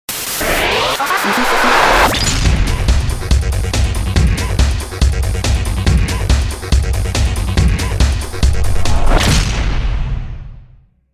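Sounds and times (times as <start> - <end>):
DJ groove sound: 0.1 - 9.4.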